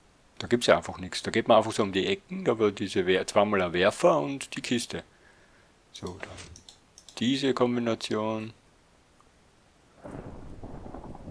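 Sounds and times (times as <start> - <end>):
quiet hiss: 0.0 - 11.2
speech: 0.4 - 5.1, 6.0 - 6.6, 7.2 - 8.6
thunder in a video game: 10.0 - 11.2.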